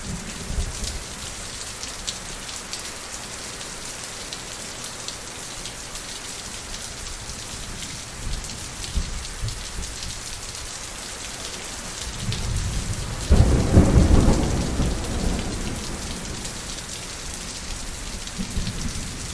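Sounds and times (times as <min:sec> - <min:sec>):
steady rain with patter on surfaces: 0:00.0 - 0:19.3
low rumble of thunder: 0:12.3 - 0:16.5.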